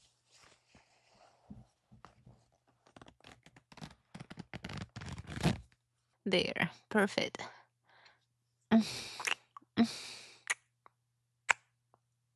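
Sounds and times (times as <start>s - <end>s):
clothing fabric rustling: 0.0s - 5.7s
zipper on a pair of pants being pulled up: 2.9s - 5.7s
speech: 6.3s - 7.5s, 8.8s - 9.1s.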